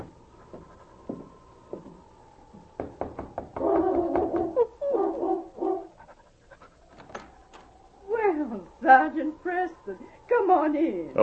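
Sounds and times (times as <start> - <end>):
knocks: 0.0 - 4.6
big gray lead dog panting heavily at a cabin door: 5.7 - 7.1
faint sustained tone: 7.2 - 11.2
speech: 8.9 - 11.2.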